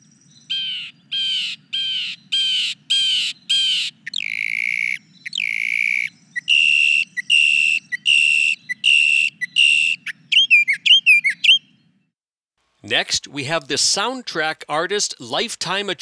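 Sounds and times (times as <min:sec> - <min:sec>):
mockingbird mimicking harsh blue jay screams: 0:00.5 - 0:11.6
speech: 0:12.9 - 0:16.0.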